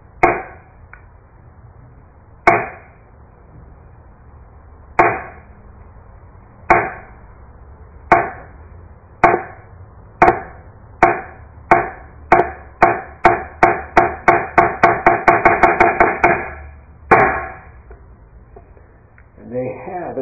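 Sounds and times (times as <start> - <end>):
thick hanging wooden han board struck to call practice in Soto Zen: 0.2 - 0.7, 2.5 - 2.9, 5.0 - 5.4, 6.7 - 7.1, 8.1 - 8.5, 9.2 - 9.6, 10.2 - 17.8.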